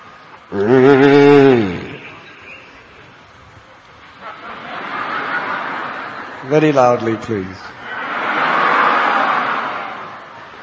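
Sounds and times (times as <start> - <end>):
speech: 0.5 - 1.1, 6.5 - 7.8
person's voice imitating an angry bull's roar: 0.5 - 2.1
laughter: 0.5 - 3.1, 4.1 - 7.2, 7.8 - 10.6.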